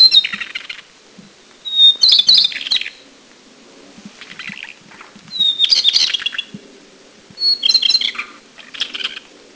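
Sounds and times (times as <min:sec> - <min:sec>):
Taiwan shortwing song of thin high whistles and rapid twittering at Anmashan, Taiwan: 0:00.0 - 0:00.7, 0:01.6 - 0:03.0, 0:04.4 - 0:06.5, 0:07.4 - 0:09.2.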